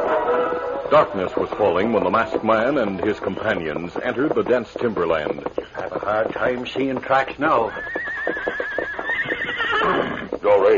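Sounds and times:
speech: 0.9 - 8.6, 10.4 - 10.7
horse whinnying: 7.3 - 10.7.

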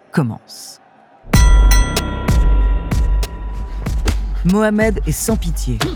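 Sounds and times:
speech: 0.1 - 2.1, 4.4 - 5.9
boxing ring bell clanging: 1.4 - 5.0.

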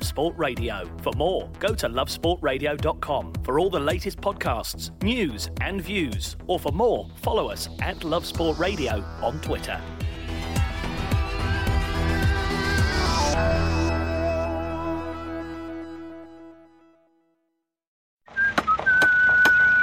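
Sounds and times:
speech: 0.2 - 10.0
rising electronic music: 7.4 - 17.0
builder whistling a tune as he works: 18.3 - 19.8.

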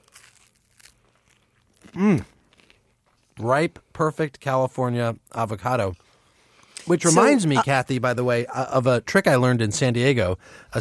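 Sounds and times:
crunchy avocado toast being bitten: 0.0 - 3.4
eater humming appreciatively: 2.0 - 2.2, 7.0 - 7.6
speech: 2.0 - 2.3, 3.4 - 6.0, 6.9 - 10.7.

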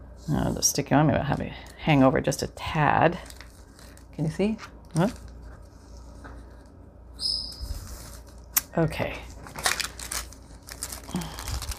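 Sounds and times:
speech: 0.2 - 3.4, 4.2 - 5.3, 8.8 - 9.3
handmade tracing paper bag crinkling as it is handled: 3.1 - 6.1, 9.3 - 11.7.

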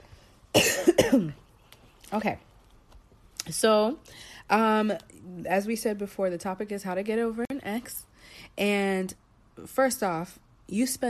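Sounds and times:
harsh coughing fit: 0.5 - 1.4
speech: 0.6 - 1.4, 2.1 - 2.5, 3.5 - 11.0.

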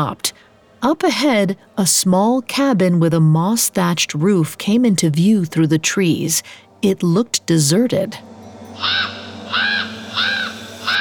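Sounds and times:
speech: 0.0 - 10.4
raven cawing: 8.8 - 10.9.

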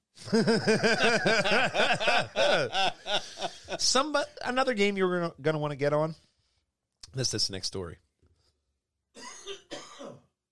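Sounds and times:
laughter: 0.2 - 4.6
speech: 0.3 - 2.9, 3.8 - 6.3, 7.1 - 8.0
person coughing in harsh rasping bursts: 2.4 - 2.8, 9.2 - 10.3
person clearing throat: 9.2 - 10.3.

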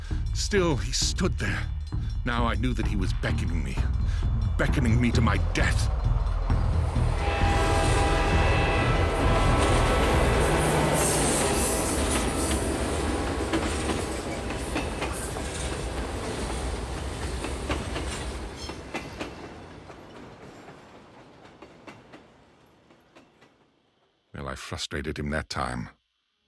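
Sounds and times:
train bell ringing: 0.0 - 13.1
train approaching and passing on a hot dry afternoon: 0.0 - 24.2
speech: 0.4 - 6.0, 24.9 - 26.0
train wheels clacking on rails: 1.4 - 23.8
train whistle sounding sustained tones: 7.1 - 12.9.

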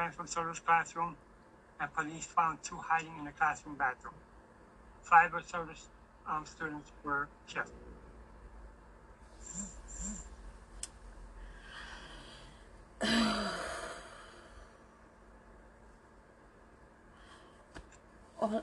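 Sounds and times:
speech: 0.0 - 4.3, 5.0 - 7.9, 9.4 - 10.3
faint steady low hum: 0.0 - 18.6
deep breath: 11.3 - 14.8, 17.1 - 17.7.

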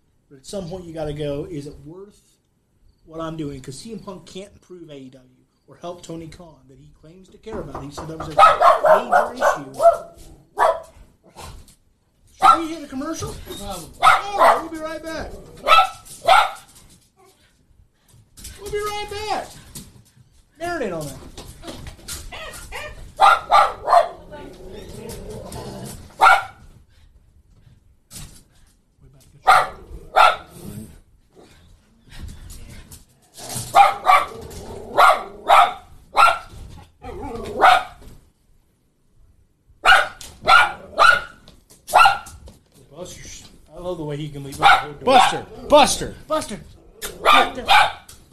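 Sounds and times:
speech: 0.3 - 2.4, 3.1 - 10.4, 12.6 - 15.8, 18.7 - 19.6, 20.6 - 21.4, 44.0 - 46.8, 47.4 - 48.0
dog barking: 8.2 - 11.0, 12.4 - 12.8, 14.0 - 14.8, 15.6 - 16.7, 22.3 - 24.2, 26.2 - 26.6, 29.4 - 30.6, 33.7 - 36.5, 37.1 - 38.0, 39.8 - 42.4, 44.6 - 45.8, 47.0 - 48.1.

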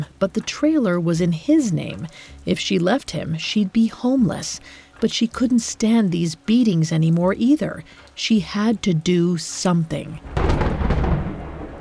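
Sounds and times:
speech: 0.2 - 10.4
thunder rumbling during a stormy night in Texas: 10.2 - 11.7.

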